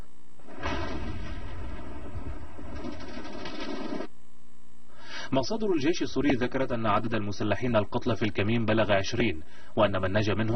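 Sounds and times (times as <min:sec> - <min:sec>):
series of roadside bomb explosions: 0:00.4 - 0:04.1
speech: 0:05.3 - 0:10.5.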